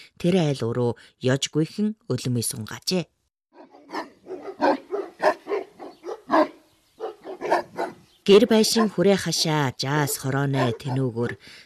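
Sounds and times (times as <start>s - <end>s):
speech: 0.2s - 3.2s, 8.2s - 11.6s
guard dog barking in a household yard: 3.5s - 11.1s.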